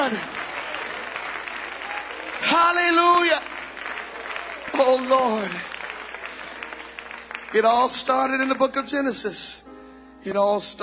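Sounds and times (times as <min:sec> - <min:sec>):
audience clapping hands in praise: 0:00.0 - 0:08.5
speech: 0:04.8 - 0:05.7, 0:07.5 - 0:09.6, 0:10.2 - 0:10.8.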